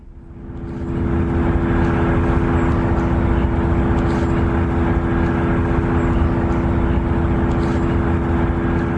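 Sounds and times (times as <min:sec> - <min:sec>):
broad rushing roar of a data center: 0:00.0 - 0:08.9
data center mechanical drone recorded from a nearby house in southern New Jersey: 0:00.0 - 0:08.9
steady humming tones of a data center: 0:00.0 - 0:08.9.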